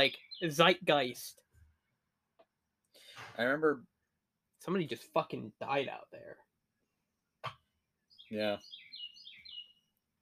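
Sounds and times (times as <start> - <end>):
speech: 0.0 - 1.4, 3.4 - 3.9, 4.6 - 6.5, 8.3 - 8.8
bird chirp: 0.0 - 1.9, 7.9 - 10.1.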